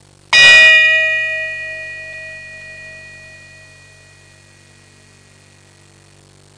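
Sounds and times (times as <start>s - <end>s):
Swiss bell ringing: 0.4s - 4.4s.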